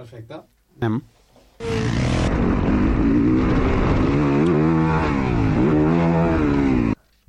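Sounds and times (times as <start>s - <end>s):
speech: 0.0s - 2.1s
four-stroke 450cc motocross motorcycle engine revving: 1.6s - 7.0s.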